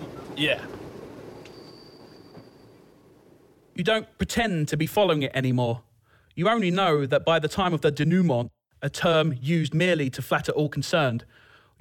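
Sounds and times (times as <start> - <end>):
thin high whine: 0.0 - 3.5
train carriage rumbling along rails heard from inside: 0.0 - 3.5
speech: 0.4 - 0.8, 3.8 - 11.7.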